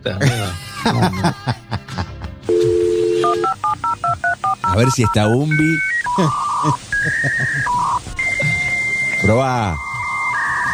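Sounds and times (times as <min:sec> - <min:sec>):
speech: 0:00.0 - 0:01.7, 0:04.8 - 0:07.4, 0:09.3 - 0:09.9
laughter: 0:00.0 - 0:04.0, 0:04.6 - 0:10.7
short telephone keypad beeps: 0:02.5 - 0:10.7
telephone dial tone while placing a call: 0:02.5 - 0:10.7.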